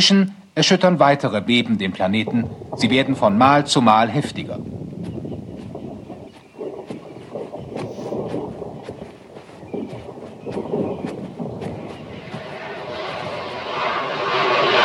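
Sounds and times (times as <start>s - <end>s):
speech: 0.0s - 4.8s
vertical take-off aircraft engine roar approaching and landing: 1.3s - 14.8s
sharp crackling bursts from vertical take-off aircraft engine: 1.4s - 14.8s.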